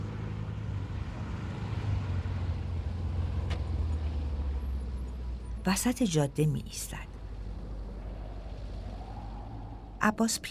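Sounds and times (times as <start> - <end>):
car driving along a snowy mountain road: 0.0 - 10.4
speech: 5.7 - 7.1, 10.0 - 10.4.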